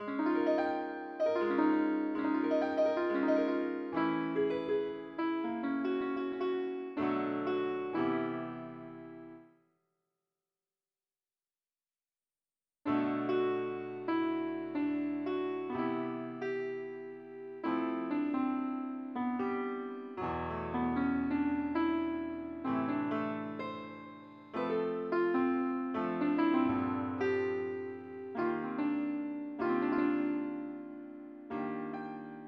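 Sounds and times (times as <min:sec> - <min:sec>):
piano: 0:00.0 - 0:09.6, 0:12.9 - 0:32.4.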